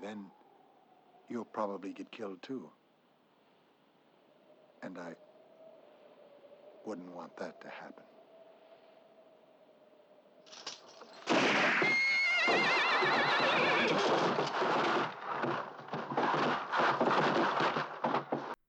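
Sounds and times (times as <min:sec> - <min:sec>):
speech: 0:00.0 - 0:00.4, 0:01.3 - 0:02.8, 0:04.8 - 0:05.3, 0:06.8 - 0:08.1
horses whinnying loudly and shrilly: 0:11.0 - 0:18.5.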